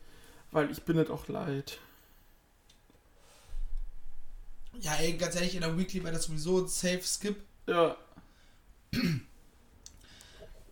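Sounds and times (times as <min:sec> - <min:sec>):
speech: 0:00.5 - 0:01.9, 0:04.8 - 0:08.0, 0:08.9 - 0:09.3
throat clearing: 0:08.9 - 0:09.3.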